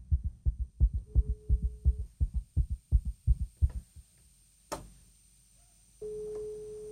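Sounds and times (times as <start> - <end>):
thumping rhythmic beats: 0.0 - 4.0
steady single-pitch telephone ringback tone during a live call: 6.0 - 6.9.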